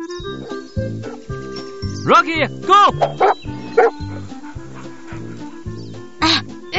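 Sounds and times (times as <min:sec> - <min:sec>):
dog barking while catching a frisbee at a frisbee dog competition: 0:00.3 - 0:01.8, 0:02.9 - 0:06.1
speech: 0:00.8 - 0:01.2, 0:02.0 - 0:04.1.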